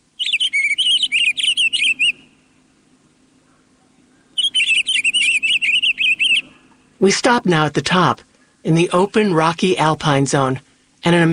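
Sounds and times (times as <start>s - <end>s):
pine grosbeak warbling from scattered evergreens in the high subalpine: 0.2s - 2.4s, 3.5s - 7.2s
speech: 7.0s - 11.3s.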